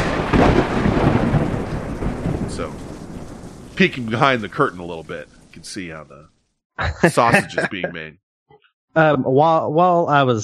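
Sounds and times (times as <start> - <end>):
thunderclap: 0.0 - 6.2
speech: 3.8 - 8.2, 9.0 - 10.4
laughter: 6.8 - 8.1.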